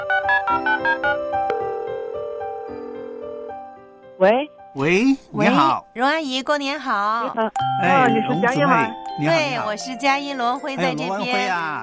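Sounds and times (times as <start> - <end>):
telephone line ringback tone while dialing: 0.2 - 3.8
speech: 4.2 - 11.8.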